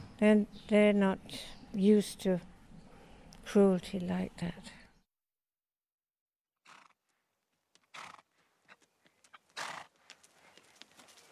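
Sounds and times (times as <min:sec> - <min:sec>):
speech: 0:00.2 - 0:02.5, 0:03.5 - 0:04.8
horse snorting breaths: 0:06.6 - 0:07.0, 0:07.9 - 0:08.3, 0:09.6 - 0:09.9
horse hooves shuffling: 0:07.1 - 0:11.3
horse hooves clip-clopping: 0:07.6 - 0:11.3.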